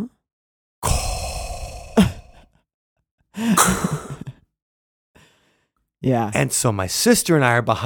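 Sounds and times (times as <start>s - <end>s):
sci-fi villain's mechanical respirator breathing effect: 0.8s - 2.4s
speech: 6.0s - 7.8s.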